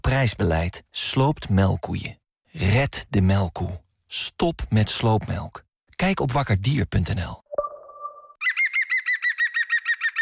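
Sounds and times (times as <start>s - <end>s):
speech: 0.0s - 7.4s
European green woodpecker giving its loud laughing call: 8.4s - 10.1s.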